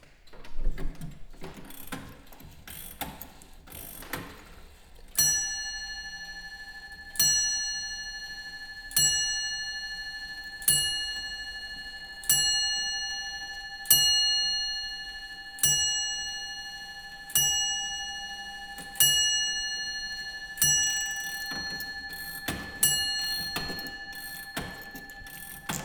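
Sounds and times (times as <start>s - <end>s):
longcase clock from around 1700 bell strikes: 5.2s - 25.8s
longcase clock from around 1700 winding ratchet clicks: 21.2s - 25.8s.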